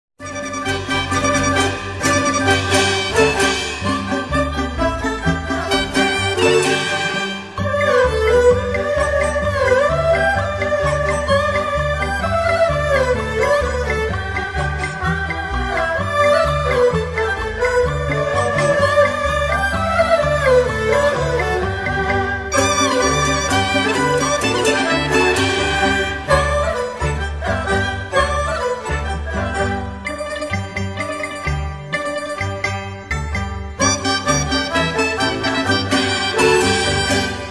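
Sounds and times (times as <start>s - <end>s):
background music loop: 0.3s - 37.4s.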